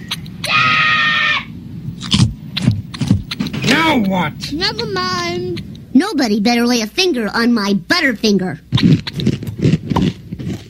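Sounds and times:
low rumble: 0:00.0 - 0:10.6
child screaming high-pitched: 0:00.4 - 0:01.6
speech: 0:03.9 - 0:09.3.

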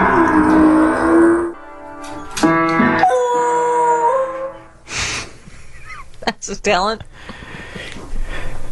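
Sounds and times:
beagle-basset hound mix howling: 0:00.0 - 0:01.6, 0:03.0 - 0:04.7
speech: 0:06.5 - 0:07.3.

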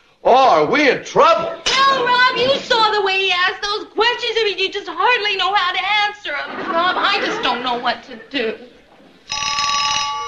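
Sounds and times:
speech: 0:00.2 - 0:03.6, 0:04.4 - 0:08.8
laughter: 0:01.3 - 0:03.2, 0:06.2 - 0:09.3
telephone ringing with a bright metallic ring: 0:09.2 - 0:10.2.

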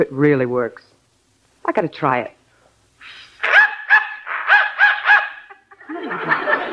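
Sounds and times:
speech: 0:00.0 - 0:01.0, 0:01.6 - 0:02.4
dog barking in response to a dog whistle: 0:03.4 - 0:05.5
laughter: 0:04.3 - 0:06.7.

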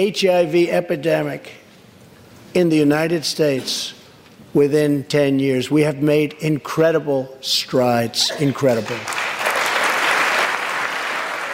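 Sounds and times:
speech: 0:00.0 - 0:01.6, 0:02.5 - 0:09.2
audience applauding a president's speech: 0:08.8 - 0:11.5.

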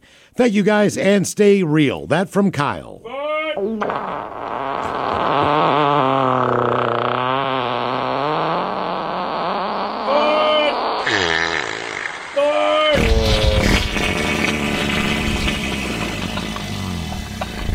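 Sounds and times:
speech: 0:00.4 - 0:04.4
loud farts: 0:03.6 - 0:17.7.

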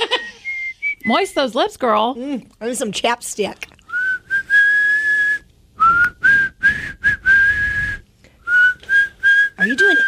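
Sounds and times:
person whistling: 0:00.0 - 0:01.2, 0:03.9 - 0:10.0
speech: 0:01.1 - 0:03.7.

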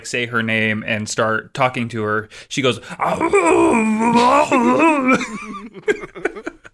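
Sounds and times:
speech: 0:00.0 - 0:06.3
person imitating a dog with a whiny vocal sound: 0:03.0 - 0:05.4
person laughing in breathy bursts: 0:03.7 - 0:06.7.

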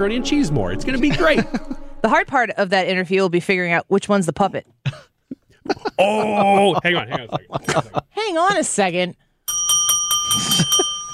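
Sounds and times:
speech: 0:00.0 - 0:05.0, 0:05.7 - 0:09.2
laughter: 0:01.0 - 0:01.9, 0:05.3 - 0:08.6
small bell jingling: 0:09.5 - 0:11.1.

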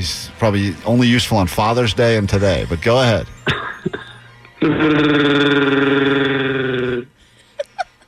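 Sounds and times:
speech: 0:00.0 - 0:04.0, 0:04.6 - 0:06.2
person imitating a growling alien creature roar: 0:04.6 - 0:07.1.

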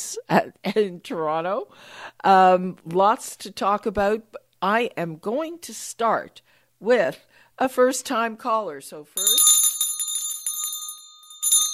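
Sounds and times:
speech: 0:00.2 - 0:09.5
studio bell ringing to welcome a first-time caller on a call-in talk show: 0:09.2 - 0:11.7.

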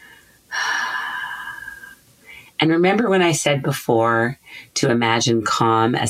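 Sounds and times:
deep breath during a guided relaxation exercise: 0:00.0 - 0:02.6
speech: 0:02.6 - 0:06.0.

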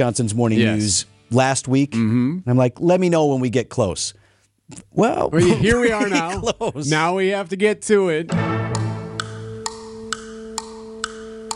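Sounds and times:
speech: 0:00.0 - 0:08.6
laughter: 0:05.4 - 0:06.9
clock ticking: 0:08.3 - 0:11.5.

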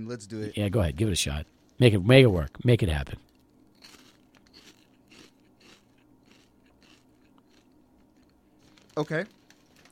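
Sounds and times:
speech: 0:00.0 - 0:03.3, 0:09.0 - 0:09.4
crunching and chewing a Korean barbecue flavored crisp snack: 0:03.3 - 0:09.9.

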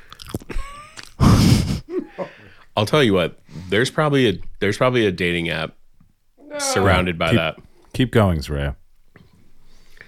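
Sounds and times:
crunchy chewing and biting of food during a mukbang eating session: 0:00.0 - 0:01.2
breaths: 0:01.2 - 0:02.8, 0:03.4 - 0:03.8, 0:09.2 - 0:10.0
speech: 0:02.2 - 0:05.8, 0:06.5 - 0:08.8.

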